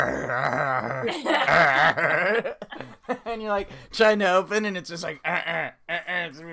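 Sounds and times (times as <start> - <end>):
person vocally imitating a dog growling and tugging: 0.0 - 2.4
speech: 0.0 - 6.5
laughter: 0.8 - 3.3.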